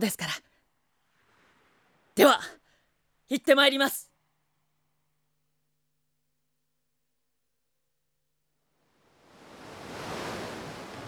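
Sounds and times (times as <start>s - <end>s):
speech: 0.0s - 0.4s, 3.3s - 4.1s
rushing surf of an ocean wave building and washing in: 1.1s - 2.2s, 8.8s - 11.0s.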